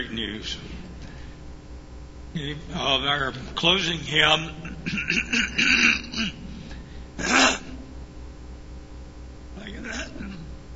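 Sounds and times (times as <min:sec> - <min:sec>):
speech: 0:00.0 - 0:00.8, 0:02.3 - 0:06.4, 0:07.2 - 0:07.4
person clearing throat during a church service: 0:04.6 - 0:07.9, 0:09.6 - 0:10.6.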